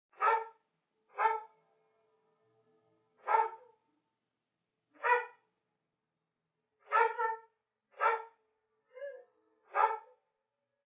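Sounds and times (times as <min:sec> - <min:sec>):
dog barking: 0:00.1 - 0:01.5, 0:03.2 - 0:03.8, 0:05.0 - 0:05.5, 0:06.8 - 0:08.4, 0:09.7 - 0:10.2.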